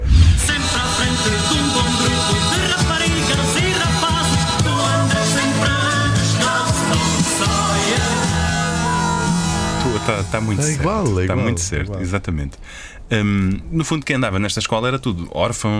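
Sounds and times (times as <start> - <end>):
original main title theme music with bass line and melodic phrases: 0.4 - 10.8
speech: 10.1 - 15.7.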